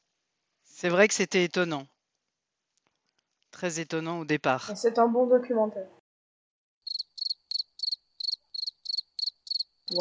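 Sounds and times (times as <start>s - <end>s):
speech: 0.8s - 1.9s, 3.6s - 6.0s
cricket chirping: 6.8s - 10.0s.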